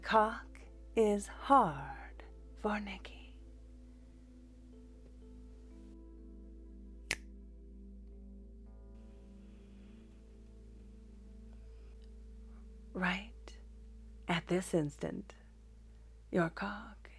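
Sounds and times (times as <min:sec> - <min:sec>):
speech: 0:00.1 - 0:02.0, 0:02.6 - 0:03.2, 0:13.0 - 0:13.3, 0:14.3 - 0:15.4, 0:16.3 - 0:17.0
crisp finger snap: 0:07.1 - 0:07.3.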